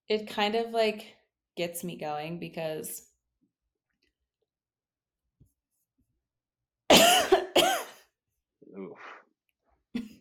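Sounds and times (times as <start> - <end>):
speech: 0.1 - 3.1
person coughing into a microphone: 6.9 - 8.0.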